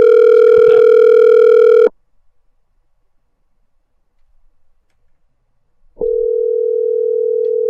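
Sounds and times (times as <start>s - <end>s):
telephone ringing on the line during an unanswered call: 0.0s - 1.9s, 6.0s - 7.6s.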